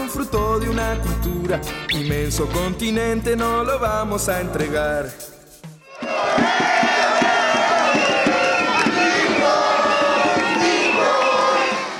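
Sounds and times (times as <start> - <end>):
speech: 0.1 - 5.4
large crowd of football fans cheering and chanting at a San José roundabout: 5.9 - 11.9
whistles: 7.4 - 11.9.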